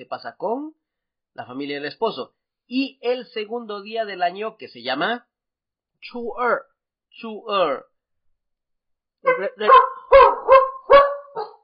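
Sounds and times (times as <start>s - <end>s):
speech: 0.0s - 0.8s, 1.4s - 5.3s, 6.0s - 7.9s, 9.2s - 10.4s
small dog barking: 9.3s - 11.6s.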